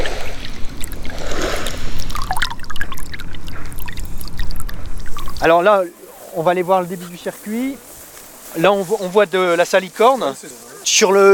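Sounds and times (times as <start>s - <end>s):
small water splashes and gurgles in a salt marsh pan: 0.0s - 5.5s
water flowing slowly into a re-flooded salt marsh pan: 0.0s - 11.3s
speech: 5.4s - 7.9s, 8.5s - 11.3s.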